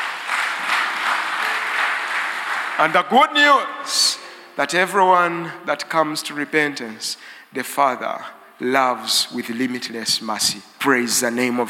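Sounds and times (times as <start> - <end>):
room full of people clapping: 0.0 - 3.9
speech: 2.8 - 11.6.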